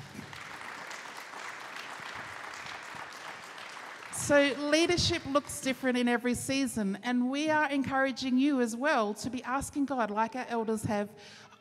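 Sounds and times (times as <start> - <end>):
crowd applause: 0.0 - 4.6
speech: 4.3 - 11.5.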